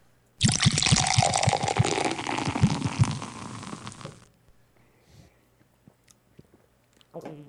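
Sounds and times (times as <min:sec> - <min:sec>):
people sipping carbonated pumpkin beer from cans: 0:00.4 - 0:04.3.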